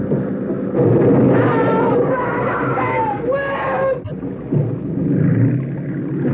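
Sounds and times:
motorboat engine roaring: 0.0 - 6.3
people screaming in rising wails: 1.1 - 4.3.

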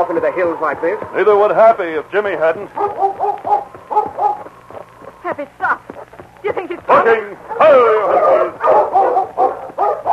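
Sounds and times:
speech: 0.0 - 4.3, 5.2 - 5.8, 6.4 - 9.0
dog barking at a deep hole by an old mine shaft in the hills: 2.7 - 4.5, 6.8 - 10.1
dog drawn-out whining bark: 2.8 - 4.5, 7.5 - 10.1.

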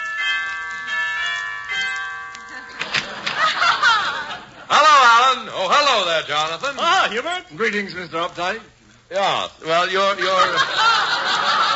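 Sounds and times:
doorbell chiming with long ringing tones: 0.0 - 4.3
laughter: 2.5 - 4.9, 10.1 - 11.7
speech: 5.7 - 11.3.

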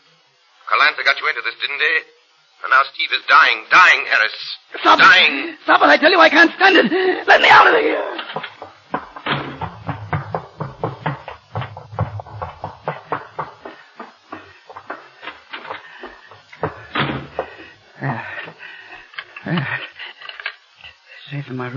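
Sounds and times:
speech: 0.7 - 8.5, 21.5 - 21.7
door shutting: 8.2 - 18.2.

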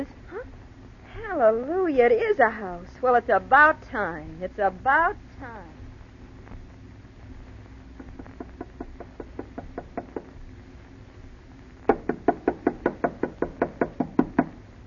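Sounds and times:
speech: 1.4 - 5.8
knocking on the wooden door of a house: 8.4 - 10.4, 11.9 - 14.6.

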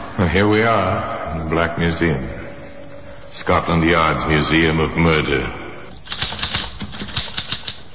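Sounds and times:
speech: 0.3 - 2.3, 3.3 - 5.6
typewriter typing: 6.0 - 7.9.

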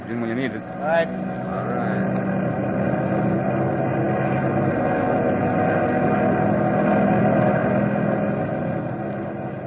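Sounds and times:
airplane engine droning as the plane climbs over turbulent air: 0.0 - 9.6
speech: 0.1 - 2.1.

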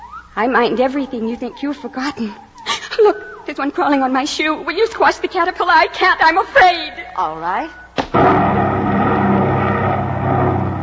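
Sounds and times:
speech: 0.4 - 8.4
airplane engine drone: 8.2 - 10.8.

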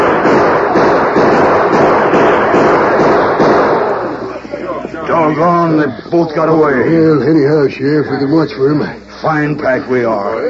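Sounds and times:
gunshots in a radio western drama shootout: 0.0 - 4.3
speech: 5.3 - 10.4.

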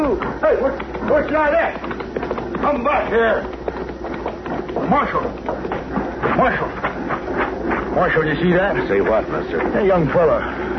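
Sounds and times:
horse ridden by a young man galloping: 0.0 - 10.0
speech: 0.2 - 3.6, 4.7 - 5.7, 6.4 - 6.9, 8.0 - 10.7.

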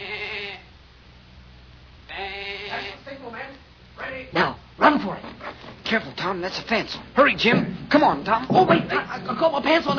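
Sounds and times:
person imitating a sheep bleating as a signal: 0.0 - 0.7, 2.1 - 3.0
quiet hum: 0.0 - 9.9
speech: 5.9 - 9.9.

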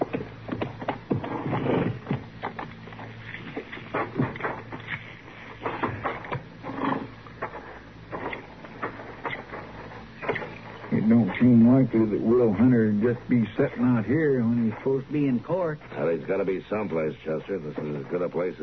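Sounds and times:
horses' hooves clip-clopping: 0.0 - 11.0
speech: 11.1 - 18.6.

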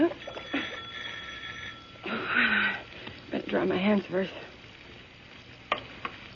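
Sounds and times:
electric doorbell buzzing ring at a home: 0.0 - 2.3
speech: 3.6 - 4.5.

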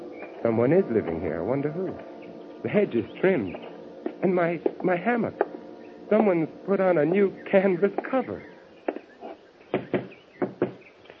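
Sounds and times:
speech: 0.4 - 5.4, 6.1 - 8.5
knocking on a door: 9.7 - 10.8.

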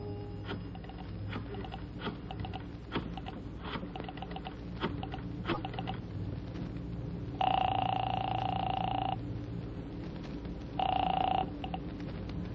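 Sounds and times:
faint noise: 0.0 - 12.5
electronic phone ring tones: 7.4 - 9.2, 10.8 - 11.8.

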